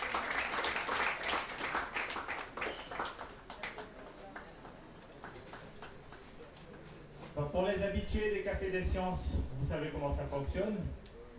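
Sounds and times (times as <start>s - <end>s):
audience applause at a science café talk: 0.0s - 6.4s
speech: 7.4s - 11.1s.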